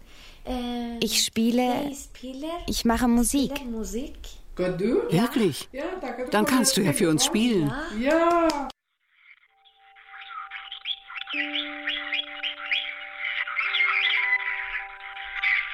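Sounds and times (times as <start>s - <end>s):
speech: 0.4s - 8.8s
parrots squawking and chirping in a bird shop: 9.1s - 15.7s.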